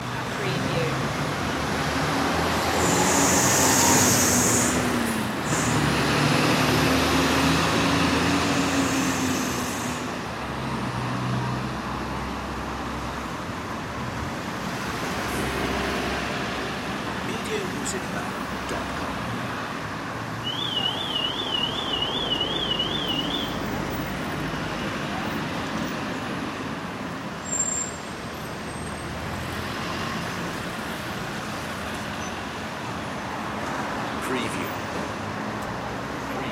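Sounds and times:
traffic at a crossroads: 0.0 - 36.5.

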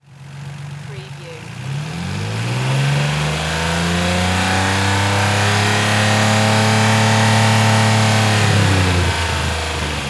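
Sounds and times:
Nissan 350Z engine long rev: 0.1 - 10.0.

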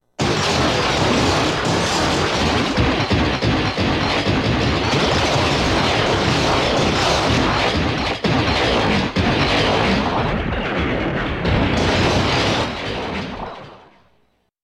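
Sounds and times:
smashes and crashes: 0.2 - 14.1.

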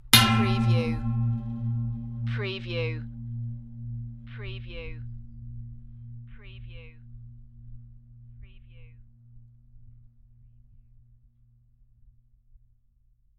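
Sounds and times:
gong-like metal impact with long ring: 0.0 - 10.2.

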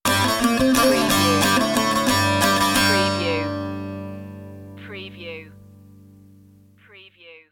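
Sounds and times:
eastern ceremonial music stinger: 0.1 - 4.8.

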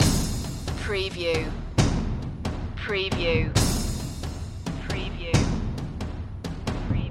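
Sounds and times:
big percussion loop: 0.0 - 7.0.

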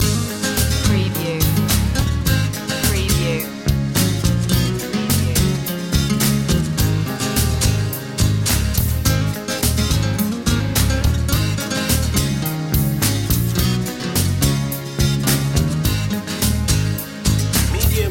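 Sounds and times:
guitar loop: 0.0 - 18.0.

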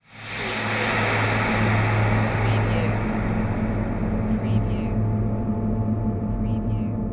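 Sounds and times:
airy reverb production element: 0.0 - 7.0.

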